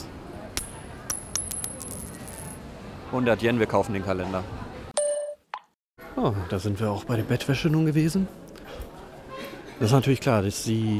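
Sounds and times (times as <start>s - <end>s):
faint crowd noise: 0.0s - 5.0s, 6.0s - 10.9s
coin flipped and bouncing on a hard floor: 0.6s - 2.6s
speech: 3.1s - 4.6s, 6.2s - 8.8s, 9.8s - 10.9s.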